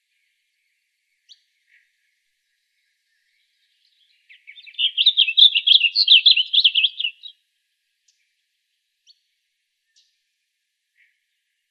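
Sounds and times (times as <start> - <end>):
blue grosbeak song in Arizona: 1.2 - 7.4
speech: 6.0 - 6.2.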